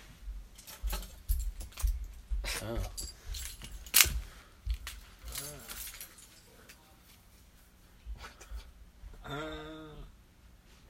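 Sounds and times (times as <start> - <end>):
bunch of keys jangling: 0.5 - 6.8
speech: 2.6 - 3.1.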